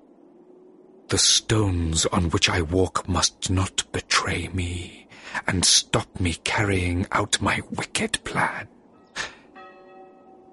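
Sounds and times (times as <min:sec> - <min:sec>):
speech: 0:01.1 - 0:08.8
bell ringing to summon someone: 0:08.9 - 0:10.5.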